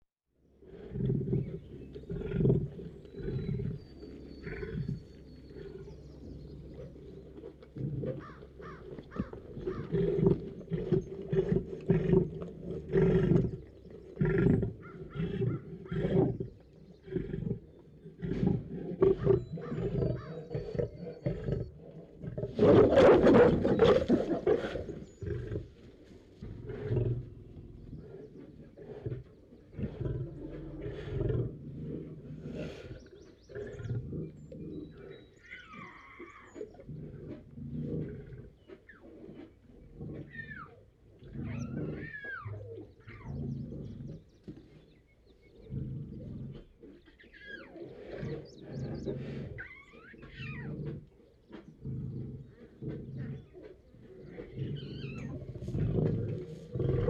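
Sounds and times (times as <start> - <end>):
lion in cage roaring: 0.6 - 25.8, 26.4 - 44.2, 45.6 - 57.0
birds in background: 1.2 - 21.9, 22.5 - 31.5, 32.4 - 57.0.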